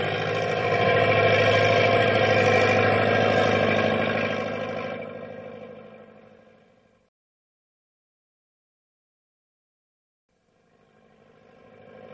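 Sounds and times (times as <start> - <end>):
heavy truck engine laboring through snow drifts: 0.0 - 7.1, 10.6 - 12.1.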